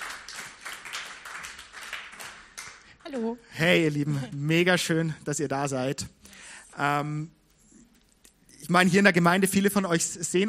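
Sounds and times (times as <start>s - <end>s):
church congregation applauding: 0.0s - 2.9s
speech: 3.1s - 6.2s, 6.8s - 7.4s, 8.7s - 10.4s.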